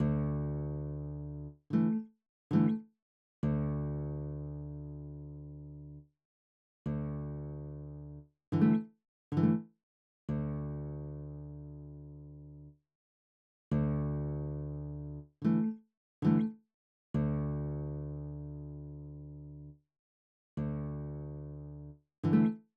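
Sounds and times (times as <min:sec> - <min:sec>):
classical acoustic guitar: 0:00.0 - 0:02.8, 0:03.4 - 0:06.0, 0:06.9 - 0:09.7, 0:10.3 - 0:12.6, 0:13.7 - 0:16.5, 0:17.2 - 0:19.7, 0:20.6 - 0:22.6.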